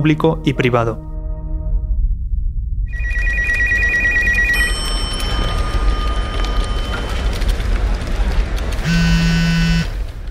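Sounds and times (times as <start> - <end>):
speech: 0.0 - 1.1
steady low rumble: 0.0 - 10.2
electronic phone ringtone warbling in short bursts: 2.9 - 7.2
bright tonal beeps: 2.9 - 7.4.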